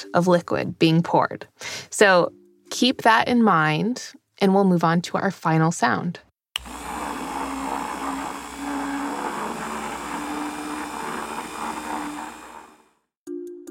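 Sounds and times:
speech: 0.0 - 6.8
electric mixer whirring as it mixes ingredients: 6.6 - 13.1.

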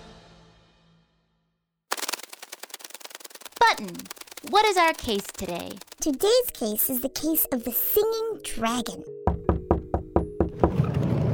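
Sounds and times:
rustling: 1.9 - 6.6
speech: 3.8 - 9.2
firm knocking on a door: 9.3 - 10.8.

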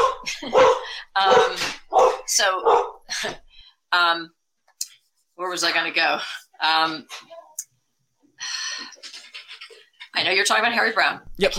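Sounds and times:
dog barking: 0.0 - 3.0
speech: 5.6 - 7.4, 10.2 - 11.5
laughter: 9.0 - 10.1.

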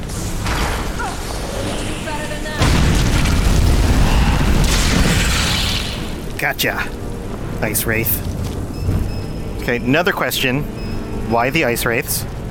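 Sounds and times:
fire-spell blasts in a fantasy video game cast against ice enemies: 0.0 - 6.4
speech: 6.4 - 7.0, 7.6 - 9.0, 9.6 - 12.4.

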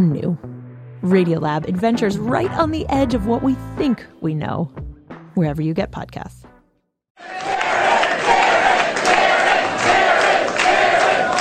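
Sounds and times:
speech: 0.0 - 4.8, 5.4 - 6.4
large crowd cheering an election victor: 7.2 - 11.3.

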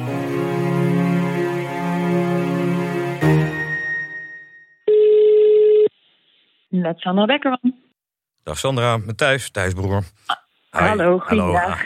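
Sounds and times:
music: 0.0 - 4.8
ringback tone from an outgoing phone call: 4.9 - 5.9
speech: 6.8 - 7.8, 8.4 - 11.8.

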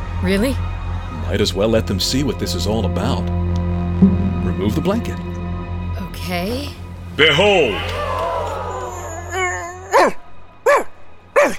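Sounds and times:
speech: 0.2 - 5.3, 6.2 - 8.0
dog barking: 8.9 - 11.5.

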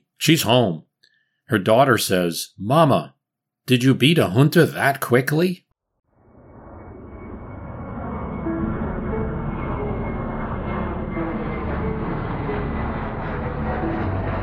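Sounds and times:
speech: 0.2 - 0.9, 1.5 - 5.6
airplane engine droning in flight: 6.1 - 14.4.

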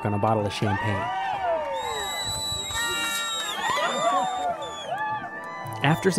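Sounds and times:
speech: 0.0 - 1.4, 5.8 - 6.1
crowd cheering and whooping at a mountain summit: 0.0 - 6.1
high fives: 1.1 - 5.9.

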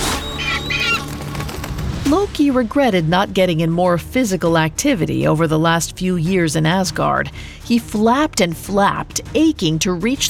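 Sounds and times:
eagle cawing in shrill squawks: 0.2 - 1.3
speech: 2.1 - 10.2.

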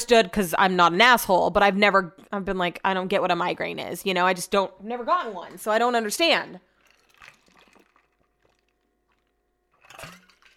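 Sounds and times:
speech: 0.1 - 6.7
slurping gulps of water sipped from a glass: 6.6 - 10.5.

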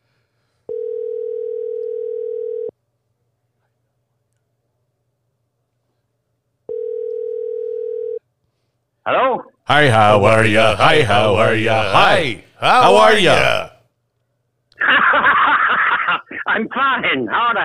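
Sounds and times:
phone dialing through a voice assistant: 0.7 - 2.7, 6.7 - 8.2
speech: 9.1 - 13.7, 16.7 - 17.6
laughter: 14.8 - 17.6.

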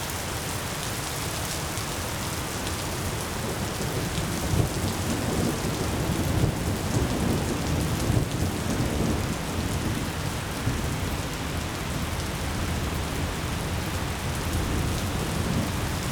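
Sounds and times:
nighttime rainstorm pouring down: 0.0 - 16.1.

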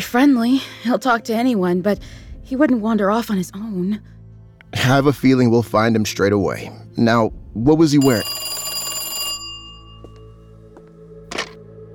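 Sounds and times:
speech: 0.0 - 4.1, 4.8 - 8.4
telephone ringing with a bright metallic bell tone: 8.0 - 10.5.

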